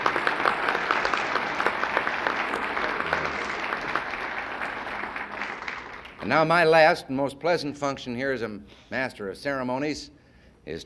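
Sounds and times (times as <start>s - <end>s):
audience applause: 0.0s - 6.6s
speech: 6.3s - 10.8s.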